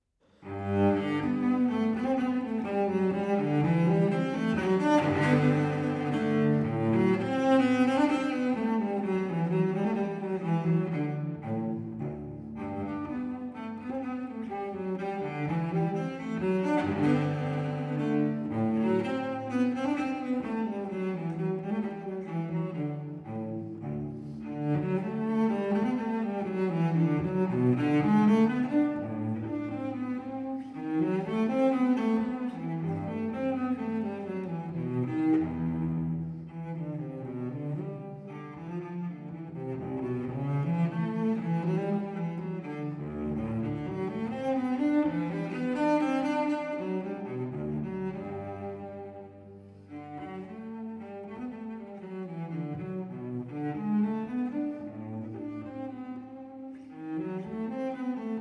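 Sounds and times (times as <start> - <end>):
baroque cello minuet: 0.0 - 58.3.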